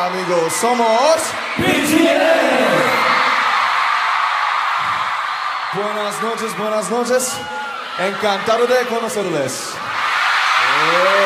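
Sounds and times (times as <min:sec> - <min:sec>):
speech: 0:00.0 - 0:03.2, 0:05.7 - 0:10.0, 0:10.8 - 0:11.2
large crowd of girls screaming at a concert: 0:02.6 - 0:08.6, 0:09.8 - 0:11.2.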